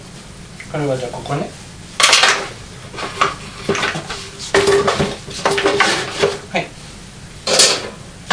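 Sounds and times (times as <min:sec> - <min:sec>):
speech: 0:00.7 - 0:01.6
cooking pot clanking and scraping: 0:02.9 - 0:06.4, 0:07.5 - 0:08.3.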